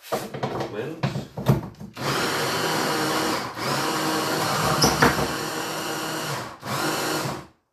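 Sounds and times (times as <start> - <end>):
speech: 0.1 - 1.4
blender motor puréeing bananas: 2.0 - 7.5.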